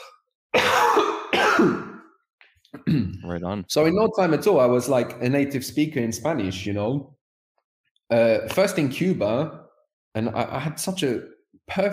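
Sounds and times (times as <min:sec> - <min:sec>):
raspy throat-clearing coughs: 0:00.0 - 0:02.1, 0:02.8 - 0:03.2
speech: 0:02.9 - 0:07.2, 0:08.1 - 0:11.9.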